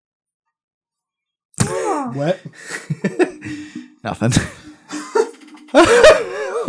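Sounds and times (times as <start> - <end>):
person sputtering coughs tangled with laughter: 1.6 - 6.6
speech: 2.0 - 4.6, 5.7 - 6.6.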